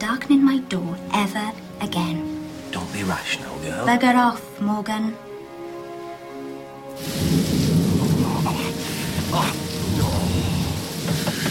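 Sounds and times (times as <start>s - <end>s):
speech: 0.0s - 2.3s, 3.0s - 5.3s, 9.3s - 9.7s
heavy pouring rain outside a pub: 1.8s - 3.9s, 6.9s - 11.4s
deep thunder rumbling: 7.0s - 11.4s.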